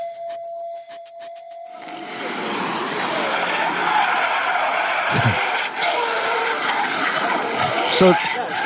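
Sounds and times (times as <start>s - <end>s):
car engine revving and roaring while drifting: 1.3s - 8.6s
car tires skidding and squealing in a drift on a road: 1.7s - 8.6s
speech: 8.0s - 8.4s.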